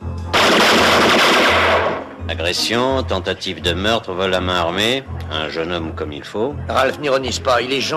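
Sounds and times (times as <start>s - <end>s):
loud burst of rapid automatic gunfire: 0.4s - 2.1s
speech: 2.4s - 7.9s.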